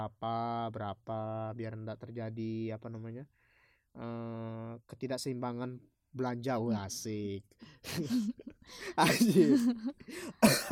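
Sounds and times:
speech: 0:00.0 - 0:10.7
harsh coughs: 0:09.0 - 0:10.7.

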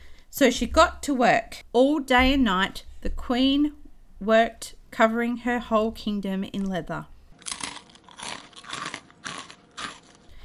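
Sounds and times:
speech: 0:00.4 - 0:07.1
noisy chewing of chicken with the mouth open: 0:07.3 - 0:10.4.

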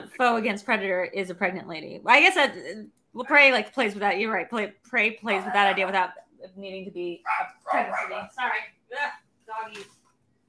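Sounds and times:
speech: 0:00.2 - 0:10.0
dog barking loudly: 0:07.2 - 0:08.3.

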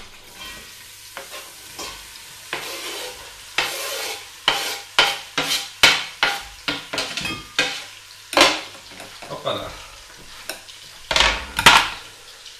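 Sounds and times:
chopped onions frying and sizzling in a pot: 0:00.0 - 0:12.5
utensil scraping and stirring against a pot: 0:00.3 - 0:09.3.

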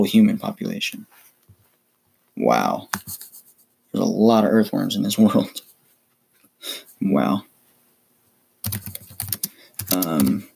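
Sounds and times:
speech: 0:00.0 - 0:01.2, 0:02.4 - 0:03.3, 0:03.9 - 0:05.7, 0:06.6 - 0:07.5, 0:08.6 - 0:09.0, 0:09.9 - 0:10.5
typing on a computer keyboard: 0:08.6 - 0:10.4.

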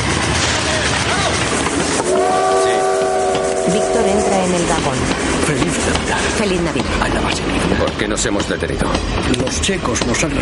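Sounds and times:
train rumbling and rattling coming to a stop at station: 0:00.0 - 0:10.3
speech: 0:04.1 - 0:10.3.

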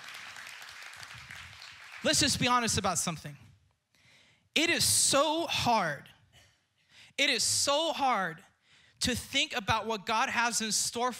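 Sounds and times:
audience applause: 0:00.0 - 0:02.6
speech: 0:02.0 - 0:03.4, 0:04.6 - 0:06.1, 0:07.2 - 0:11.1.

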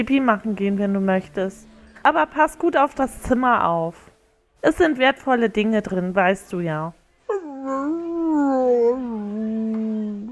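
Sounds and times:
speech: 0:00.0 - 0:07.0
dog whining howl: 0:07.3 - 0:10.3.

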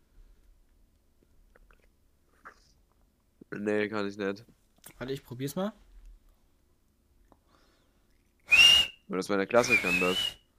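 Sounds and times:
speech: 0:03.5 - 0:05.8, 0:09.2 - 0:10.4
shrill whistle blown with fingers in the mouth: 0:08.4 - 0:10.5.

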